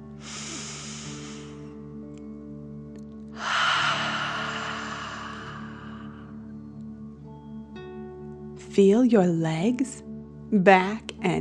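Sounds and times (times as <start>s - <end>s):
soft sustained music: 0.0s - 11.3s
deep mouth breaths in a relaxation exercise: 0.1s - 1.8s, 3.4s - 6.5s
speech: 8.8s - 11.3s.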